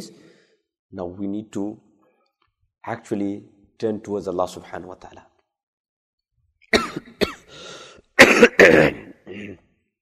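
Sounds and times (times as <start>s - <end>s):
speech: 0.9s - 1.9s, 2.8s - 5.3s, 8.4s - 9.6s
person coughing harshly: 6.7s - 7.5s, 8.2s - 9.6s
raspy throat clearing: 8.2s - 9.7s.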